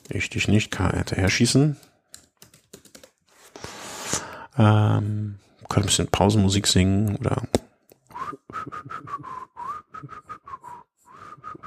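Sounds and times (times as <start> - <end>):
speech: 0.1 - 1.9, 4.6 - 7.6
typing on a computer keyboard: 1.8 - 3.2.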